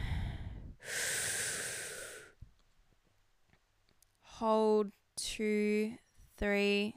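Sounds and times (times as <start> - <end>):
deep breath in and out: 0.0 - 2.4
speech: 4.4 - 6.9.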